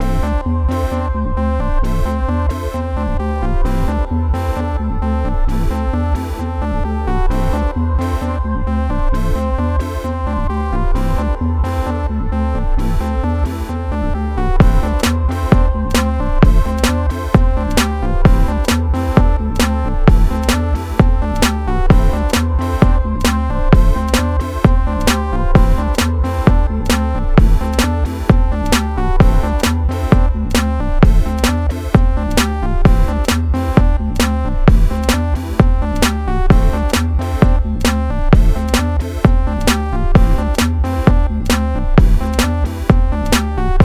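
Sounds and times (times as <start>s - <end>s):
emotional synth rap beat: 0.0s - 43.8s.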